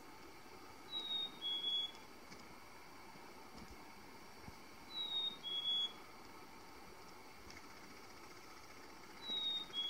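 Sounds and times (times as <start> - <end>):
chickadee two-note spring mating call whistles: 0.9 - 2.0, 4.9 - 6.0, 9.3 - 9.8.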